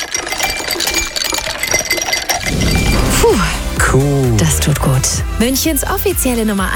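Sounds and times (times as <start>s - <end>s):
ice cubes clinking against a glass: 0.0s - 3.6s
rushing swell: 2.4s - 4.9s
speech: 3.9s - 6.7s.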